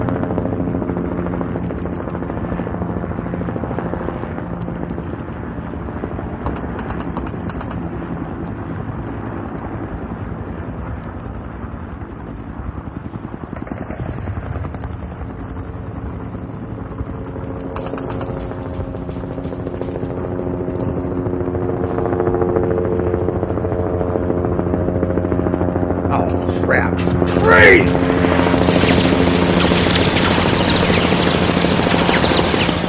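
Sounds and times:
helicopter rotor: 0:00.0 - 0:32.8
machine-gun fire: 0:27.4 - 0:32.8.

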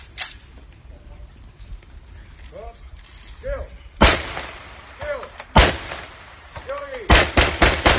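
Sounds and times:
volley of gunshots fired in a street in honour of a dead man: 0:04.0 - 0:07.9.

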